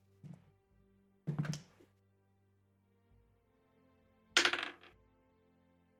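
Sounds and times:
dice rolling on a table for a sleight of hand check in a game: 4.4 - 5.0.

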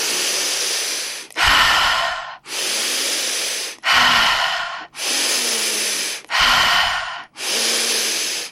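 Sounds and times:
rapid deep breathing from a breathwork technique: 0.0 - 8.5.

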